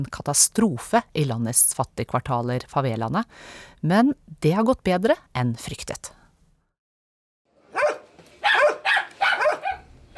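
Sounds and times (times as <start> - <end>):
speech: 0.0 - 6.2
two dogs barking in Rosinha favela, Rio de Janeiro, Brazil: 7.7 - 10.1.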